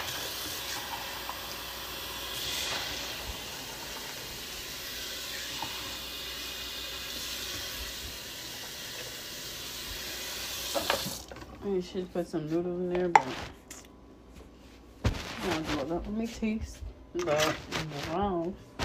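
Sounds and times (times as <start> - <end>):
pot of water at a rolling boil: 0.0 - 11.4
speech: 11.6 - 13.6, 15.9 - 18.7.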